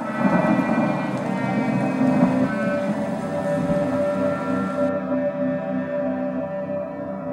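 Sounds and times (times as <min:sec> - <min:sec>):
low rolling thunder rumble: 0:00.0 - 0:04.9
heavy rain pouring in a thunderstorm: 0:00.0 - 0:05.0
sustained droning tone: 0:00.0 - 0:07.3.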